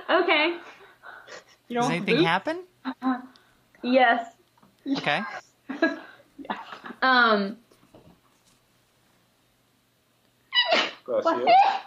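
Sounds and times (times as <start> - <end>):
speech: 0.1 - 3.2, 3.8 - 7.6, 11.1 - 11.8
person sneezing: 10.6 - 11.0.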